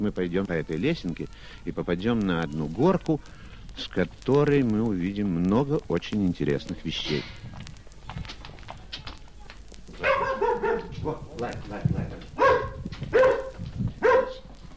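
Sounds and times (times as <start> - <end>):
speech: 0.0 - 7.7, 11.0 - 12.3
dog barking at visitors: 10.0 - 11.1, 12.4 - 14.5.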